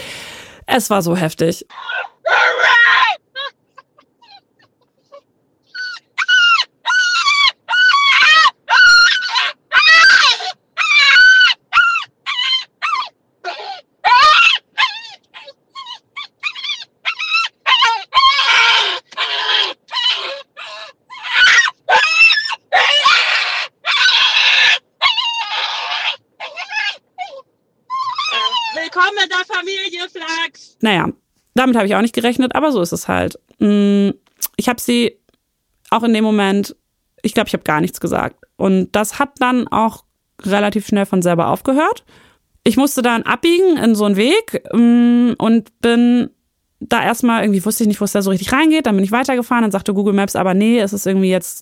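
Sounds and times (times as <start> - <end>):
speech: 0.8 - 2.0, 31.7 - 35.2, 35.9 - 51.6
woman screaming shrilly in voice message: 1.7 - 3.5, 5.8 - 15.1, 15.8 - 27.0, 27.9 - 29.6.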